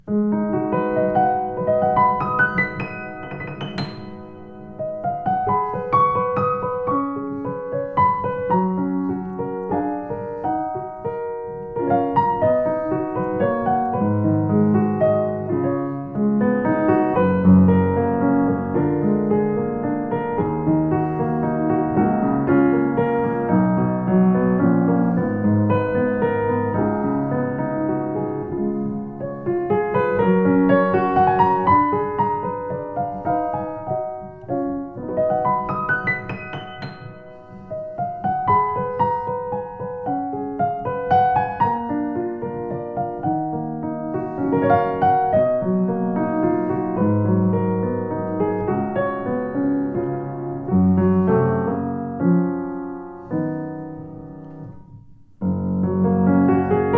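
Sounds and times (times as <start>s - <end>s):
Yamaha U1 H piano: 0.0s - 56.9s.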